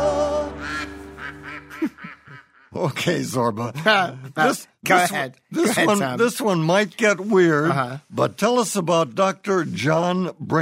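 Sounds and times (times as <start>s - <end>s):
duck quacking: 0.6s - 2.7s
speech: 1.8s - 10.5s.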